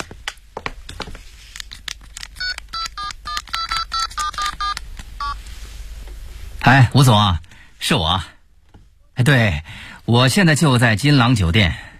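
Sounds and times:
soft rustling and handling noise: 0:00.0 - 0:01.8, 0:05.3 - 0:06.6
touch-tone keypad beeps as a phone number is dialled from a hotel: 0:02.4 - 0:05.4
speech: 0:06.7 - 0:08.3, 0:09.2 - 0:11.9.

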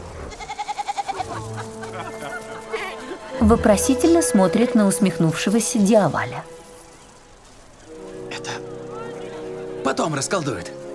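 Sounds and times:
white goat bleating among wedding guests: 0:00.3 - 0:01.3
laughter: 0:01.0 - 0:03.5
speech: 0:01.4 - 0:02.4, 0:03.3 - 0:06.6, 0:10.2 - 0:10.8.

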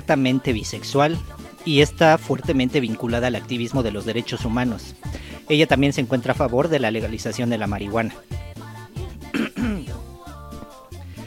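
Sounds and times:
speech: 0:00.1 - 0:08.4
person coughing with a throat-clearing quality: 0:09.3 - 0:10.0.

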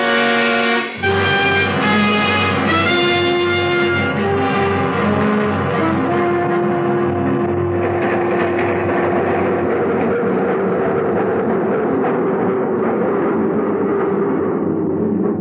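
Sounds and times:
subway train stopping at station: 0:00.0 - 0:15.3
subway train clattering: 0:01.2 - 0:12.9.

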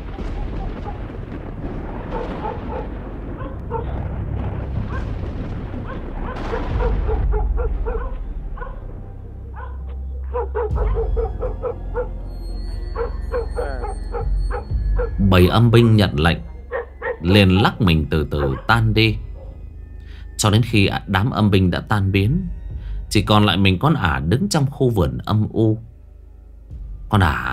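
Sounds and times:
village dogs barking wildly: 0:00.0 - 0:01.2, 0:02.0 - 0:04.0, 0:04.9 - 0:05.2, 0:05.8 - 0:08.8, 0:09.6 - 0:15.2, 0:16.6 - 0:19.6
heavy low rumble: 0:00.0 - 0:26.0
speech: 0:15.3 - 0:16.5, 0:17.2 - 0:19.2, 0:20.4 - 0:25.9, 0:27.1 - 0:27.5.

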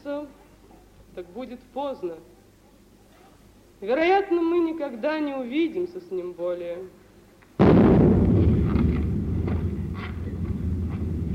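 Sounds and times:
speech: 0:01.2 - 0:02.4, 0:03.8 - 0:07.0
cannon salute fired for a merchant stepping off his barge: 0:07.6 - 0:11.3.

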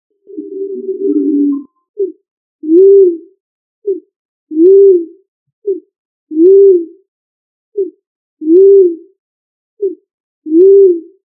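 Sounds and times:
pigeon cooing: 0:00.3 - 0:03.3, 0:03.9 - 0:06.9, 0:07.8 - 0:09.1, 0:09.8 - 0:11.2.

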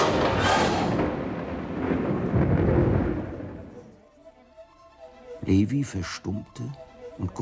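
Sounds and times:
thunder cracking and rumbling in a storm: 0:00.1 - 0:04.0
speech: 0:05.5 - 0:07.4.

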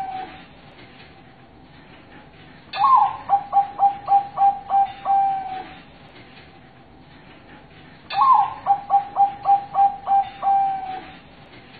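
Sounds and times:
zebra dove song cooing: 0:00.0 - 0:00.4, 0:02.8 - 0:05.8, 0:08.1 - 0:11.2.

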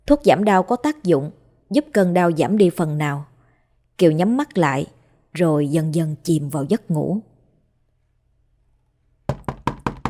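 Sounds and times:
speech: 0:00.1 - 0:03.3, 0:04.0 - 0:07.3
knocking on a room door: 0:09.3 - 0:10.0.

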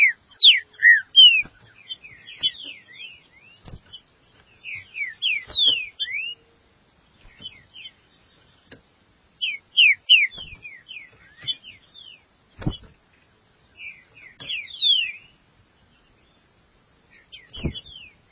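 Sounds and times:
green-winged saltator singing sliding whistles: 0:00.0 - 0:03.6, 0:04.6 - 0:06.4, 0:09.4 - 0:11.6, 0:13.8 - 0:15.3.

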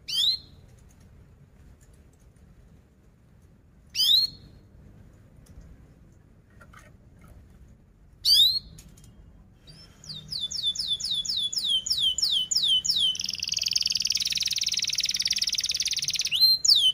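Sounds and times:
canary singing rapid dense chirping song: 0:00.0 - 0:00.6, 0:03.9 - 0:04.6, 0:08.2 - 0:16.9.

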